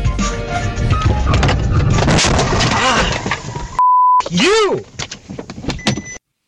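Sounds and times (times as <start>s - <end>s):
in-car road noise from a moving vehicle: 0.1s - 6.2s
short steady bleep: 3.8s - 4.2s
man shouting: 4.3s - 4.9s.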